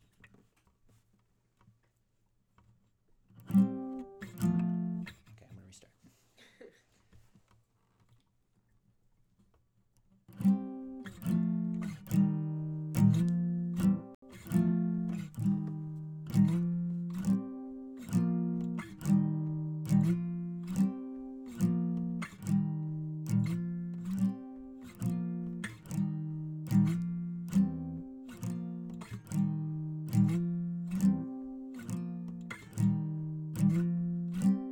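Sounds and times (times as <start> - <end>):
acoustic guitar: 3.4 - 5.9, 10.3 - 34.7.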